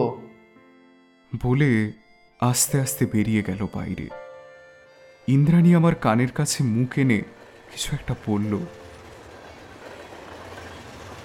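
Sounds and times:
speech: 0:01.4 - 0:04.2, 0:05.3 - 0:08.8
mail or express train rattling across a rail bridge: 0:05.4 - 0:11.2.

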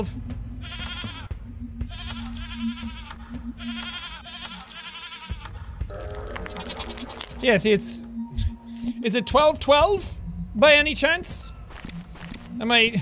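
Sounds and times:
speech: 0:00.0 - 0:00.8, 0:07.4 - 0:08.1, 0:09.0 - 0:11.5, 0:12.6 - 0:13.0
goat bleating in long wavering harmonic calls: 0:00.6 - 0:01.3, 0:01.9 - 0:07.4.

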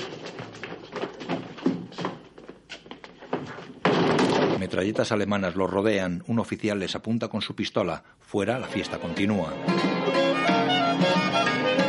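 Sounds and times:
dispensary door being shut in a hurry with wooden thuds: 0:03.8 - 0:04.7
speech: 0:04.7 - 0:11.8.

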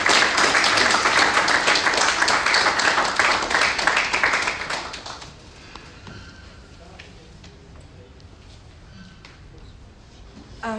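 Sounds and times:
audience applause from a sizable crowd: 0:00.0 - 0:05.4.

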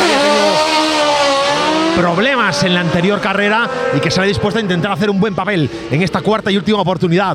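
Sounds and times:
race car engines roaring and revving: 0:00.0 - 0:07.3
speech: 0:02.0 - 0:07.3.

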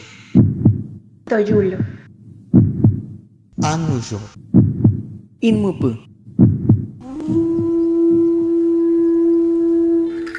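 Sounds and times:
deep heartbeat thumps in lub-dub pairs: 0:00.1 - 0:08.4
speech: 0:01.3 - 0:02.0, 0:03.7 - 0:04.5, 0:05.4 - 0:06.1
steady humming drone: 0:07.0 - 0:10.3.

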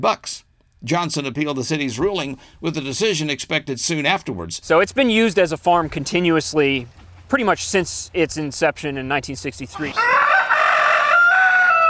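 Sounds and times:
speech: 0:00.0 - 0:10.1
rooster crowing on a farm: 0:09.8 - 0:11.8.

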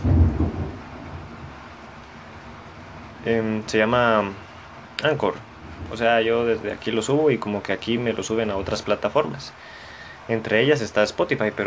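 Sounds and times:
rolling thunder: 0:00.0 - 0:09.1
rain-like noise: 0:00.0 - 0:11.6
speech: 0:03.2 - 0:04.4, 0:05.0 - 0:11.6.

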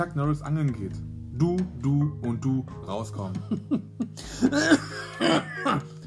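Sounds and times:
speech: 0:00.0 - 0:06.0
harsh hacking coughs: 0:04.2 - 0:06.0.

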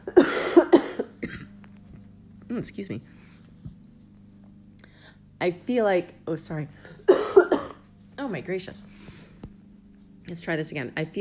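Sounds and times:
person coughing harshly from a tickle in the throat: 0:00.0 - 0:01.6, 0:06.9 - 0:07.9
speech: 0:02.5 - 0:03.3, 0:05.4 - 0:07.0, 0:08.3 - 0:09.2, 0:10.3 - 0:11.1.

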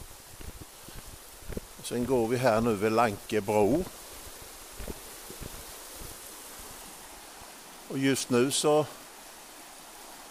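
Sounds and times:
brief low thumps: 0:00.0 - 0:06.2
brief rustles: 0:00.0 - 0:06.9
strongly flowing stream water: 0:00.0 - 0:10.2
speech: 0:01.9 - 0:04.0, 0:08.0 - 0:09.0.

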